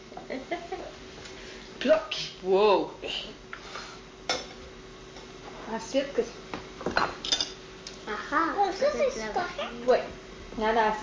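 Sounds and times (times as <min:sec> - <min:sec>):
speech: 0:01.8 - 0:03.4, 0:05.7 - 0:06.4, 0:08.3 - 0:11.0
dishes and cutlery clinking together while washing up: 0:04.3 - 0:05.3, 0:06.9 - 0:07.6.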